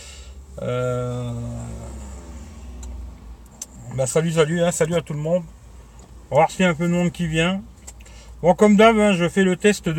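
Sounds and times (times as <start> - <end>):
car engine rumbling while driving, heard from inside the vehicle: 0.0 - 9.9
speech: 0.6 - 1.6, 4.0 - 5.6, 6.3 - 7.7, 8.4 - 9.9.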